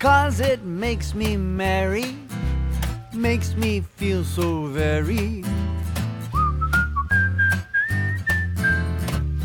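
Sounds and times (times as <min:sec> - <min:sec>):
speech: 0:00.0 - 0:02.2, 0:03.2 - 0:05.8
bouncy instrumental backing music: 0:00.0 - 0:09.4
person whistling a bright sliding melody: 0:06.3 - 0:09.4.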